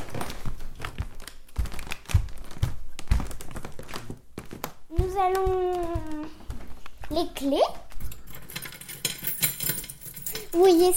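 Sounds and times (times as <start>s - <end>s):
wooden floorboards creaking and thudding under steps: 0.0s - 8.1s
speech: 5.2s - 6.1s, 7.1s - 7.8s, 10.5s - 10.9s.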